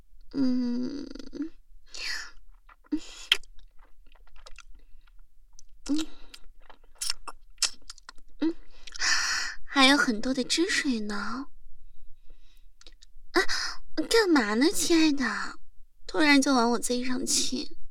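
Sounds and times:
speech: 0.3 - 1.0, 10.1 - 11.6, 14.0 - 17.8
person humming: 0.3 - 1.5
wet chewing of soft slippery abalone: 2.3 - 9.0.

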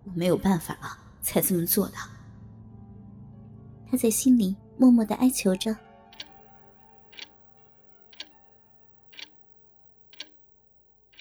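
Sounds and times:
speech: 0.1 - 2.1, 3.9 - 5.8
wall clock ticking: 7.1 - 7.3, 8.1 - 8.3, 9.1 - 9.3, 10.1 - 10.4.

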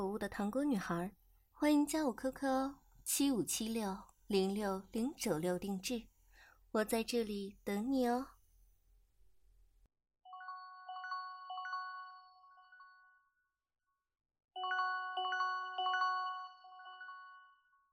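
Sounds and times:
speech: 0.0 - 6.1, 6.7 - 8.4
phone ringtone for an incoming call with bright electronic melody: 10.3 - 13.1, 14.6 - 17.7.

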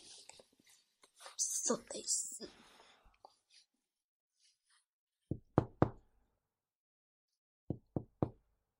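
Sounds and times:
speech: 1.7 - 2.5
firm knocking on a door: 5.3 - 6.0, 7.7 - 8.4.

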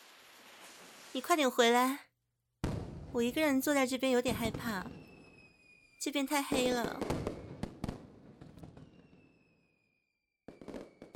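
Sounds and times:
thin firework whistle: 0.0 - 1.2, 4.9 - 6.1, 7.0 - 7.9, 8.6 - 11.1
fireworks exploding at night during Chinese New Year: 0.0 - 1.5, 2.6 - 9.5, 10.5 - 11.1
speech: 1.2 - 2.1, 3.1 - 5.0, 6.0 - 7.2.

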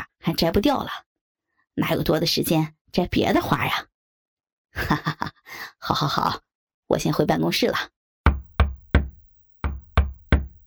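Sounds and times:
speech: 0.2 - 1.1, 1.8 - 3.9, 4.7 - 8.0
knocking on an office door: 8.2 - 10.6.

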